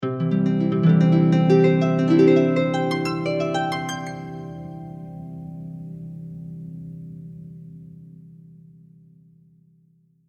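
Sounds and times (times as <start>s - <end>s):
dreamy story-time harp transition: 0.1s - 6.1s.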